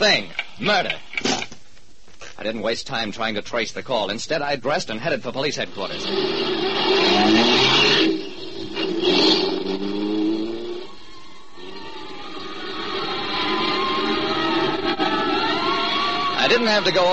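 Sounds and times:
speech: 0:00.0 - 0:01.3, 0:02.4 - 0:07.6, 0:16.6 - 0:17.1
car engine revving hard and accelerating: 0:05.8 - 0:17.1.

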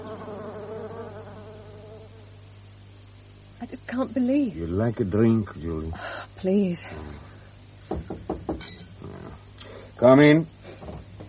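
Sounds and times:
bee buzzing around a rose: 0:00.0 - 0:02.4
speech: 0:03.6 - 0:07.3, 0:10.0 - 0:10.6.

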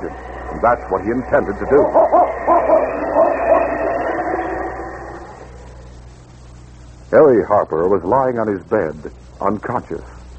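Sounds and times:
speech: 0:00.0 - 0:02.2, 0:07.1 - 0:10.2
steady rumbling noise: 0:00.0 - 0:10.3
large dog in a harness barking: 0:01.9 - 0:03.6.

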